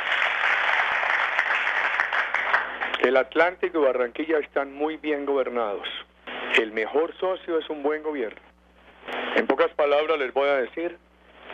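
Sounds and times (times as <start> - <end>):
crowd applauding at a public ceremony: 0.0 - 3.0
speech: 3.0 - 6.0, 6.6 - 11.0.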